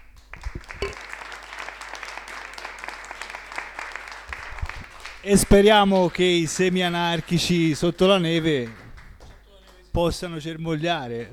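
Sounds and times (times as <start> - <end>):
audience applause at the close of a talk: 0.4 - 9.8
speech: 5.2 - 8.8, 10.0 - 11.3.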